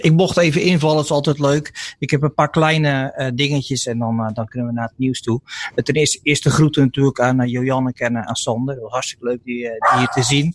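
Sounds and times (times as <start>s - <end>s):
speech: 0.0s - 10.5s
dog barking sharply: 9.8s - 10.5s.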